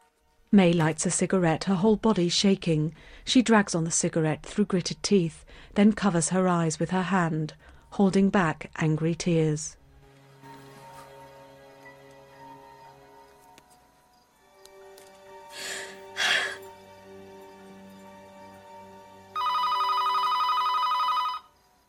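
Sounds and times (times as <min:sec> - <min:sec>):
speech: 0:00.5 - 0:09.8
telephone ringing with a buzzy tone: 0:19.3 - 0:21.6.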